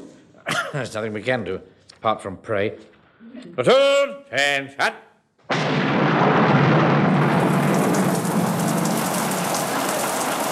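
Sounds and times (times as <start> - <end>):
speech: 0.7 - 5.6
deep rolling rumble of thunder: 5.5 - 10.5
sudden downpour of heavy rain: 6.1 - 10.5.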